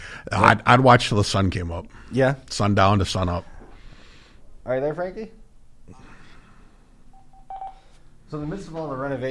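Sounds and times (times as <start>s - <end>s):
room noise: 0.0s - 9.2s
speech: 0.2s - 3.5s, 4.7s - 6.0s, 8.3s - 9.2s
touch-tone telephone keypad beeps dialing: 7.1s - 8.0s.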